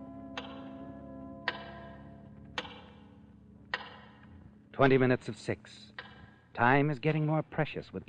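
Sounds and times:
steady low hum: 0:00.0 - 0:08.0
large clock ticking heavily: 0:00.3 - 0:02.0, 0:02.6 - 0:03.0, 0:03.7 - 0:04.2
speech: 0:04.8 - 0:08.0.

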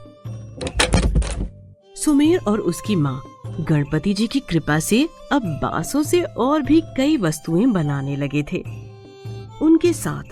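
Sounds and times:
wooden door being pushed shut: 0:00.6 - 0:01.6
speech: 0:02.0 - 0:08.8, 0:09.8 - 0:10.3.

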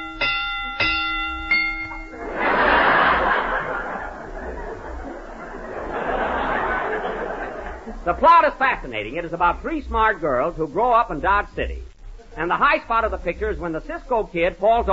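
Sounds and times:
bright bell strikes rung to rate a mystery film: 0:00.0 - 0:02.3
audience laughing and chuckling: 0:02.1 - 0:08.2
speech: 0:08.2 - 0:14.9.

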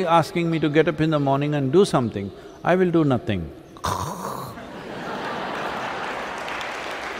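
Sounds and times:
speech: 0:00.0 - 0:04.0
person imitating snoring with raspy rumble: 0:03.8 - 0:04.6
laughter: 0:04.3 - 0:06.5.

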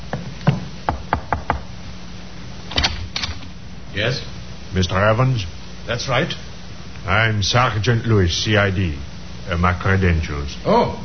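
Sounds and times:
sergeant knocking on a wooden door of a second-floor front room: 0:00.1 - 0:01.7
speech: 0:04.0 - 0:11.0.

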